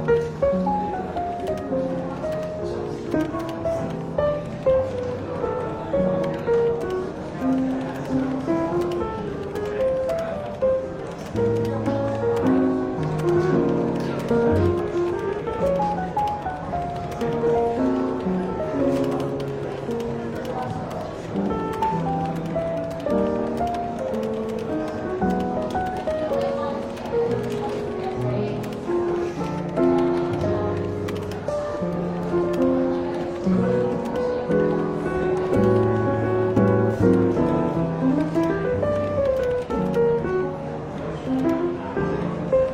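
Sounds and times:
soft easy jazz music in a bookshop cafe: 0:00.0 - 0:42.7
murmured voices in a bookshop cafe: 0:00.2 - 0:40.0.

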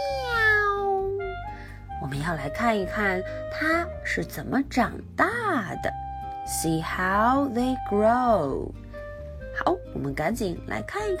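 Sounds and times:
kitten meowing: 0:00.0 - 0:01.4
speech: 0:02.1 - 0:08.8, 0:09.6 - 0:11.1.

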